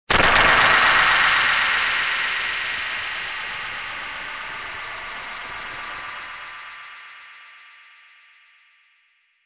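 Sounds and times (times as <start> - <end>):
alien weapon sound: 0.1 - 6.9.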